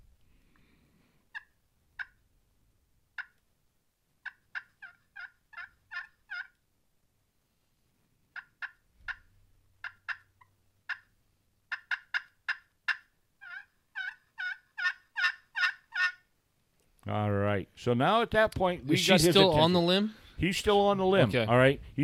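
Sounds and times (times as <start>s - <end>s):
hunter's hen turkey call yelps and cutting: 4.2s - 6.6s, 8.4s - 11.1s, 11.7s - 16.3s
male turkey gobbling: 4.2s - 6.6s, 8.3s - 9.2s, 9.8s - 16.3s
speech: 17.1s - 22.0s.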